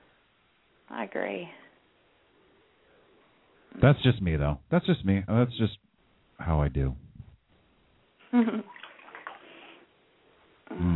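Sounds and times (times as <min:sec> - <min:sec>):
speech: 0:00.9 - 0:01.6, 0:03.8 - 0:07.0, 0:08.3 - 0:08.8
warm bath water lapping and sloshing: 0:08.4 - 0:09.8.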